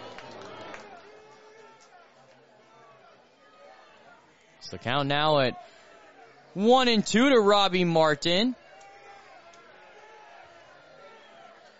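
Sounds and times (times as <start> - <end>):
crowd chatter in a ballpark: 0.0 - 11.7
speech: 4.7 - 5.8, 6.6 - 8.6.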